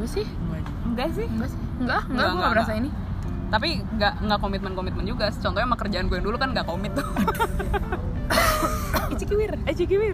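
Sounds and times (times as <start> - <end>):
speech: 0.1 - 8.4, 9.3 - 10.1
laughter: 7.0 - 9.4
person coughing in short harsh bursts: 8.3 - 9.2.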